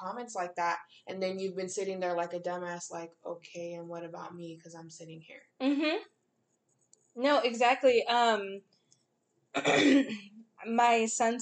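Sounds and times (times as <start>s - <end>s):
speech: 0.0s - 6.2s, 7.2s - 8.8s, 9.5s - 11.4s
single raspy throat clearing: 9.6s - 10.1s.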